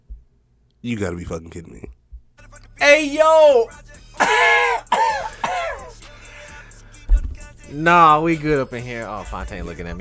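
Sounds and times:
speech: 0.8 - 2.0, 2.8 - 4.6, 7.7 - 9.9
person coughing harshly: 4.2 - 6.0
short thump: 7.1 - 7.4.

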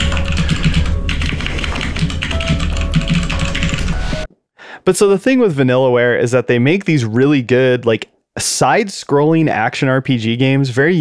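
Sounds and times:
rapid computer keyboard typing: 0.0 - 4.3
synthetic music bed with low pulsing bass and sustained tones: 0.0 - 4.3
speech: 4.8 - 10.9.

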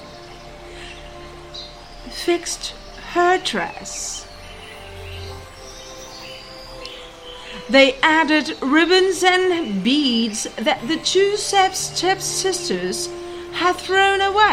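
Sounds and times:
short bright bird chirps: 0.0 - 10.8
soft steady hiss: 0.0 - 14.5
speech: 2.0 - 4.3, 7.7 - 14.5.

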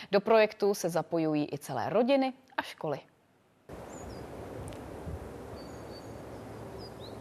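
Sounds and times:
outdoor wind: 0.0 - 7.2
speech: 0.1 - 3.1
tits calling outdoors: 3.8 - 4.4, 5.4 - 7.2.

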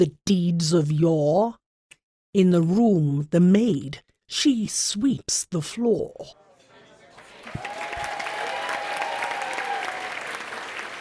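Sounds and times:
speech: 0.0 - 1.6, 2.3 - 6.4
audience applause: 7.0 - 10.9.

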